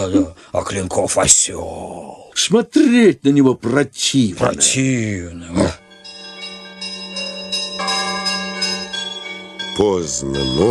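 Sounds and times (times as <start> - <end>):
speech: 0.0 - 5.8, 9.8 - 10.6
church bells ringing cheerfully late at night: 5.4 - 10.6.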